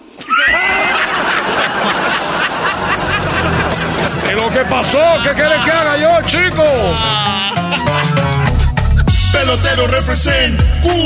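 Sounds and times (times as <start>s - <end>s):
crowd noise and babble: 0.1s - 9.1s
laughter: 0.2s - 9.1s
speech: 4.5s - 8.4s, 9.4s - 11.0s
horse neighing: 4.9s - 7.9s.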